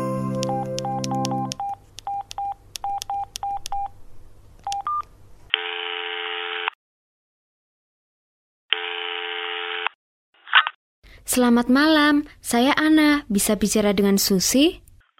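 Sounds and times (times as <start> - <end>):
telephone ringing tone: 0.2 - 2.2
telephone keypad tones: 0.3 - 3.9, 4.7 - 5.1
speech: 11.3 - 14.9.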